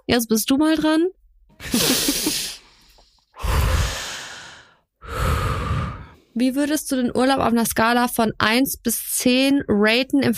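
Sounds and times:
speech: 0:00.1 - 0:02.3, 0:06.4 - 0:10.3
deep breaths in and out: 0:02.1 - 0:06.4.

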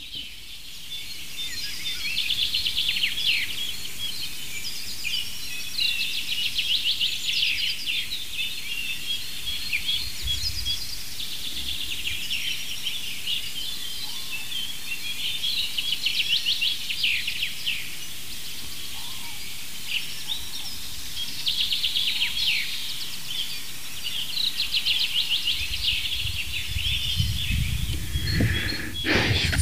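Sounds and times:
chaffinch singing in bright rattling phrases: 0:00.0 - 0:29.6
dense outdoor bird chorus: 0:00.0 - 0:29.6
low rumble of wind or handling: 0:10.0 - 0:10.9, 0:25.6 - 0:29.6.

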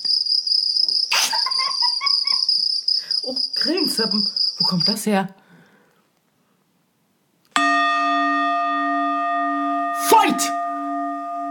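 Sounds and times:
laughter: 0:01.1 - 0:02.6
speech: 0:03.6 - 0:05.4
singing bowl ringing: 0:07.6 - 0:11.4.

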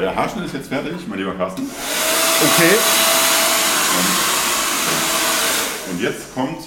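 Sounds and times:
speech: 0:00.0 - 0:03.1, 0:06.0 - 0:06.6
hair dryer blowing after a haircut: 0:01.6 - 0:06.6.

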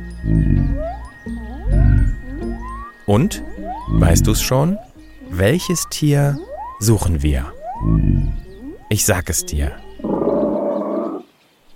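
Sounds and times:
speech: 0:00.2 - 0:00.6, 0:03.1 - 0:09.8
bear growling: 0:00.2 - 0:02.6, 0:07.7 - 0:08.8, 0:09.8 - 0:11.3.

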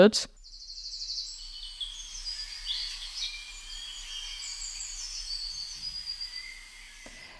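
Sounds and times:
speech: 0:00.0 - 0:00.4
spring birds chirping and trilling: 0:00.0 - 0:07.3.

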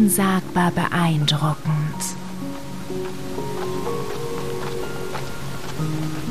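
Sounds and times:
speech: 0:00.0 - 0:02.2
soft sustained musical notes: 0:00.0 - 0:06.2
waterfall roaring: 0:02.2 - 0:06.2.

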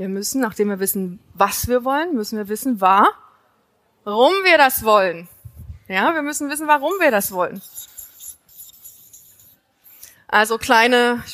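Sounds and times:
speech: 0:00.0 - 0:03.2, 0:04.0 - 0:05.3, 0:05.9 - 0:07.9, 0:10.3 - 0:11.3
marker pen squeaking and scratching across a surface: 0:06.8 - 0:09.6.

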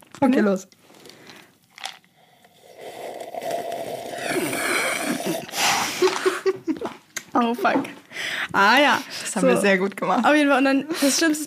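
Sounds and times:
speech: 0:00.2 - 0:00.8, 0:07.4 - 0:11.4
two people drinking cola from a bottle and coffee: 0:00.9 - 0:06.4
breathy exhales: 0:02.1 - 0:06.0.

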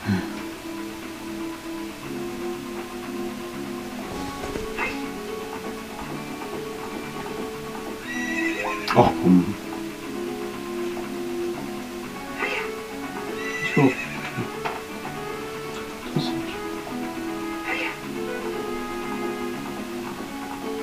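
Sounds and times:
horse hooves clip-clopping: 0:00.4 - 0:20.8
horse whinnying and snorting: 0:04.4 - 0:05.1, 0:08.0 - 0:09.4, 0:12.3 - 0:12.7, 0:13.3 - 0:14.6, 0:17.5 - 0:18.0
speech: 0:09.0 - 0:09.6.

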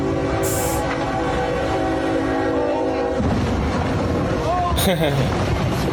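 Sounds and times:
train horn blaring: 0:00.0 - 0:04.4
laughter: 0:04.8 - 0:05.4.

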